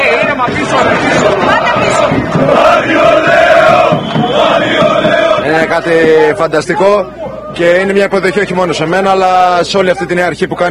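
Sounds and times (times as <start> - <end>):
dense crowd of basketball fans roaring at an airport: 0.0 - 8.8
speech: 5.8 - 10.6.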